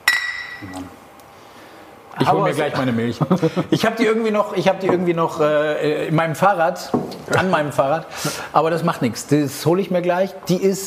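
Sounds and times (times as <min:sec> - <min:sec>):
two glasses clinking in a toast: 0:00.0 - 0:00.8
speech: 0:00.6 - 0:01.0, 0:02.2 - 0:10.8
laughter: 0:02.8 - 0:03.9.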